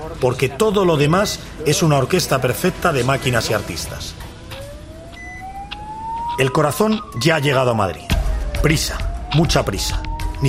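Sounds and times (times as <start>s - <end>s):
speech: 0.1s - 4.2s, 6.4s - 10.4s
ambulance siren wailing: 3.0s - 10.4s.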